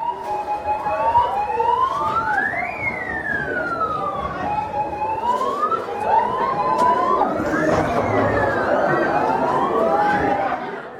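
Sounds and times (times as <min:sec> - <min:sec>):
wailing alarm siren during a school earthquake drill: 0:00.0 - 0:10.6
crowd noise and faint chatter: 0:00.0 - 0:10.9.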